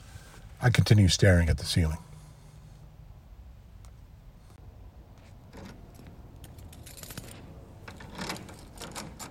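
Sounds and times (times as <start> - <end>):
low steady hum: 0.0 - 9.2
speech: 0.6 - 2.1
locks turning in a big door: 5.5 - 9.2.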